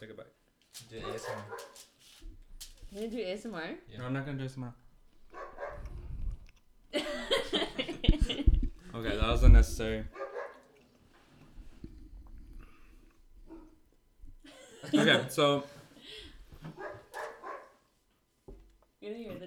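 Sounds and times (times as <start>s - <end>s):
speech: 0.0s - 2.3s, 2.9s - 5.4s, 6.9s - 10.2s, 14.9s - 16.3s, 19.0s - 19.4s
people chewing: 0.6s - 3.1s, 4.9s - 14.1s, 16.4s - 18.9s
dog barking: 0.9s - 2.0s, 5.3s - 6.0s, 10.1s - 10.8s, 16.6s - 17.9s
laughter: 6.9s - 9.3s, 14.5s - 15.9s.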